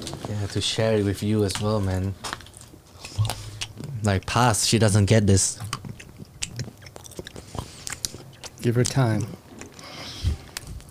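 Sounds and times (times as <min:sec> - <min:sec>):
speech: 0:00.3 - 0:02.3, 0:04.0 - 0:05.7, 0:08.6 - 0:09.4
person chewing crunchy food close to the microphone: 0:02.3 - 0:04.0, 0:05.5 - 0:10.8.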